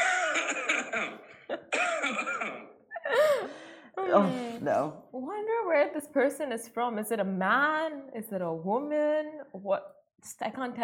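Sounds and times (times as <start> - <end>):
raspy throat-clearing hack: 0.0 - 2.8
person forcing out exaggerated theatrical coughs: 0.0 - 3.6
speech: 4.1 - 10.8.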